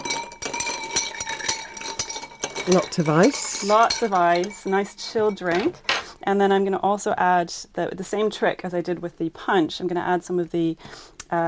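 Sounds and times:
spoon clinking against a glass while stirring a drink with Angostura bitters: 0.0s - 6.0s
speech: 2.6s - 11.4s.

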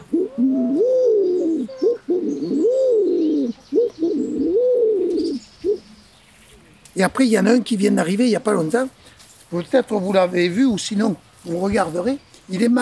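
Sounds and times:
domestic pigeon cooing: 0.0s - 6.8s
speech: 7.0s - 12.8s.

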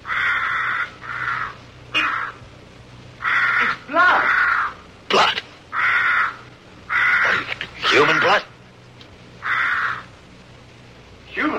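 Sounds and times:
crow cawing: 0.0s - 2.4s, 3.2s - 4.8s, 5.7s - 8.5s, 9.4s - 10.2s
low steady hum: 0.0s - 11.5s.

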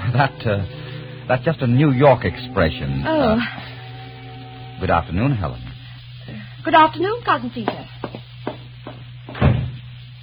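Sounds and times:
speech: 0.1s - 3.7s, 4.8s - 5.6s, 6.3s - 7.8s
door banging shut: 9.4s - 9.8s.

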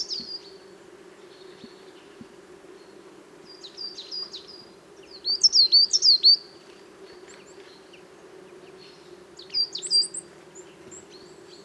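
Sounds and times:
coal tits singing in autumn forest on sunny morning: 0.0s - 11.6s.

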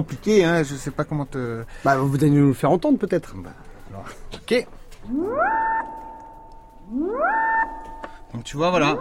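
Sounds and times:
speech: 0.0s - 5.6s, 8.3s - 8.9s
modular synthesizer with filter patched to LFO sweeping: 5.0s - 8.1s, 8.7s - 8.9s.

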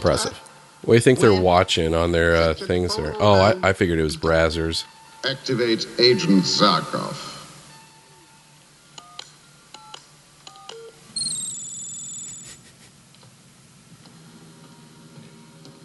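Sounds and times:
speech: 0.0s - 7.3s
touch-tone phone keypad dialing tones: 10.6s - 12.3s
bright electronic warble: 11.2s - 12.6s.

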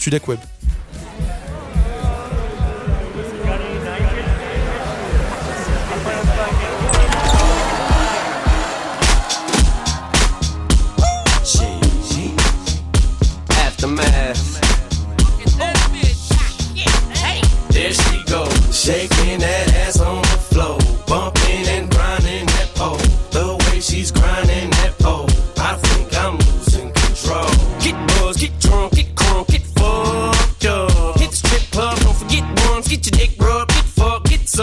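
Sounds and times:
speech: 0.0s - 0.6s
loud steady thumping beat: 0.0s - 34.6s
hip-hop song intro: 0.1s - 34.6s.

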